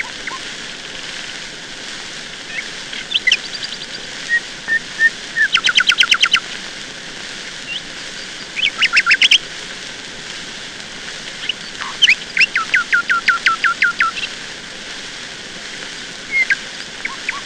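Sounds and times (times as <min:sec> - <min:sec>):
nightingale song with piping notes and soft calls: 0:00.0 - 0:00.4, 0:02.5 - 0:06.4, 0:08.6 - 0:09.4, 0:11.4 - 0:14.3, 0:16.3 - 0:17.4.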